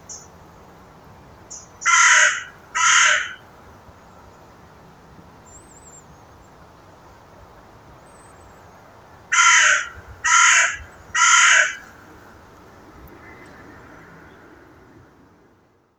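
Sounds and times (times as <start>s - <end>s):
carrion crow calling rasping caws: 1.8s - 3.5s, 9.3s - 12.0s.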